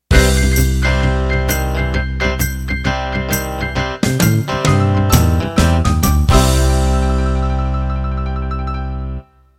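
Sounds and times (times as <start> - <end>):
country shuffle music ending: 0.1 - 8.5.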